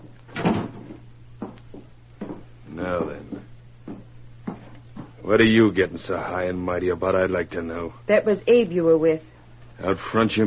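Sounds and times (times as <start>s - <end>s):
door closing: 0.3s - 1.0s
speech: 5.3s - 10.4s.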